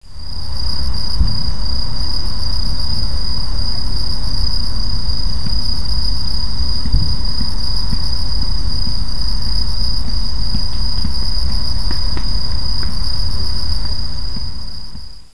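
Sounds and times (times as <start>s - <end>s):
night ambience: 0.0s - 15.3s.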